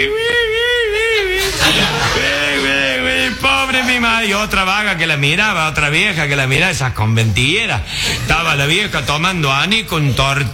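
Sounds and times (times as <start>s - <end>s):
speech: 0.0s - 0.2s, 4.0s - 10.5s
voice imitating a widow weeping at a wake: 0.0s - 4.1s
laughter: 0.7s - 5.0s, 7.8s - 10.5s.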